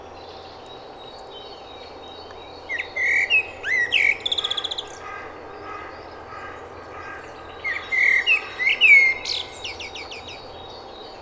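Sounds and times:
Common blackbird Turdus merula singing: 2.7s - 5.2s, 5.8s - 11.2s.

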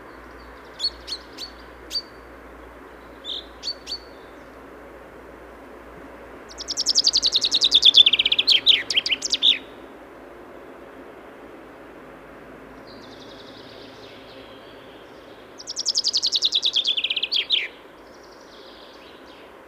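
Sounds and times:
common chaffinch Fringilla coelebs calls and song: 0.0s - 4.7s, 6.4s - 9.8s, 12.8s - 19.6s.

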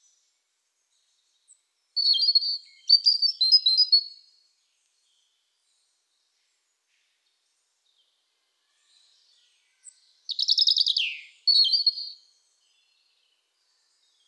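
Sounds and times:
European robin Erithacus rubecula singing: 2.0s - 4.2s, 9.8s - 12.2s.

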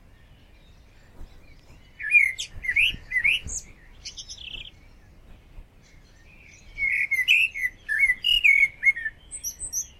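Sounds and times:
common blackbird Turdus merula singing fluted notes and squeaky twittering: 0.0s - 9.9s.

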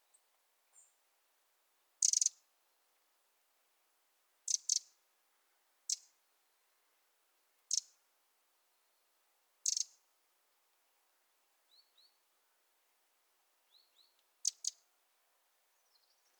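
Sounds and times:
Eurasian wren Troglodytes troglodytes giving hard dry ticking calls: 2.0s - 2.4s, 4.5s - 4.9s, 7.7s - 7.9s, 9.6s - 9.9s, 14.4s - 14.8s.

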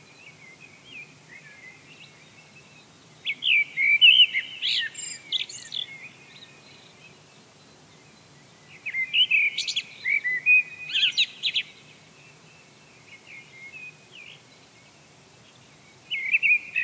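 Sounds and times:
Eurasian blackbird Turdus merula singing whistled phrases: 3.2s - 6.1s, 8.8s - 11.7s, 16.1s - 16.8s.

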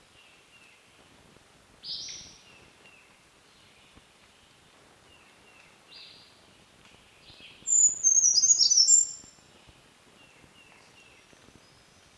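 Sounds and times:
faint background hiss: 0.0s - 12.1s
Brown Creeper Certhia americana nigrescens singing: 7.7s - 9.2s.

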